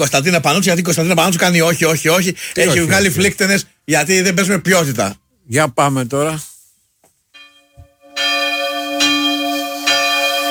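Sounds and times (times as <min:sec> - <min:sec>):
speech: 0:00.0 - 0:06.5
church bells ringing: 0:07.4 - 0:10.4.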